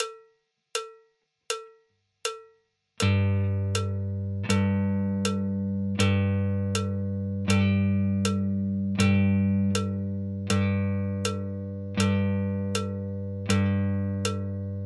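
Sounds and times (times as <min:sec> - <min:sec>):
guitar rhythm in half notes: 0:03.0 - 0:14.8.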